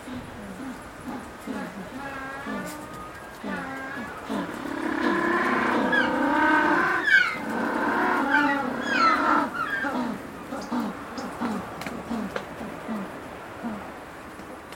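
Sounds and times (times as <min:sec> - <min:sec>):
African penguin braying: 0:00.1 - 0:13.8.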